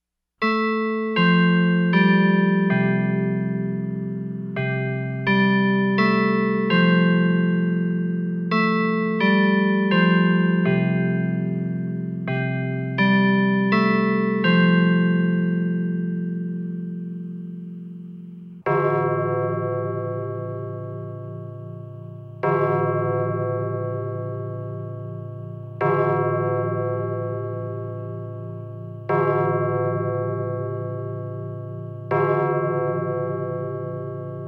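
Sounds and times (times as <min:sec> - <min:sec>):
church clock striking 12 o'clock: 0:00.4 - 0:34.4.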